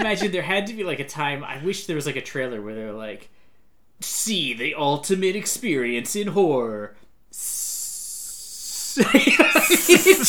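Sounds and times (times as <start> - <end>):
stifled laughter: 0.0 - 0.3, 9.0 - 10.2
speech: 0.0 - 3.4, 4.0 - 7.6, 9.0 - 10.2
person hissing a long drawn-out S imitating a snake: 7.3 - 10.2.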